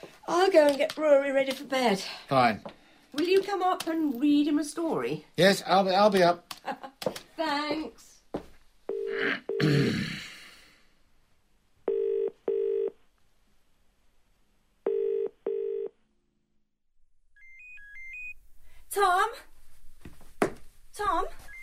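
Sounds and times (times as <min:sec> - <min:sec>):
speech: 0:00.0 - 0:08.4, 0:09.1 - 0:10.2, 0:18.9 - 0:19.5, 0:21.0 - 0:21.4
phone ringing with a double-pulse electronic tone: 0:08.9 - 0:09.7, 0:11.9 - 0:13.0, 0:14.9 - 0:16.0, 0:17.4 - 0:18.4
short rising run of beeps: 0:17.4 - 0:18.4.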